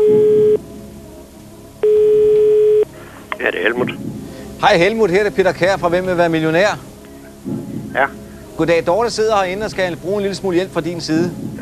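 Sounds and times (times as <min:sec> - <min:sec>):
telephone ringback tone while placing a call from a television quiz show: 0:00.0 - 0:00.6, 0:01.8 - 0:02.9
speech: 0:03.5 - 0:11.6.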